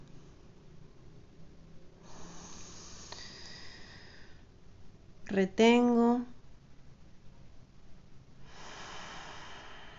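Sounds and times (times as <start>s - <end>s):
low steady hum: 0.0s - 9.9s
deep inhale through the nose during a guided breathing exercise: 2.0s - 4.5s, 8.4s - 9.9s
speech: 5.3s - 6.3s.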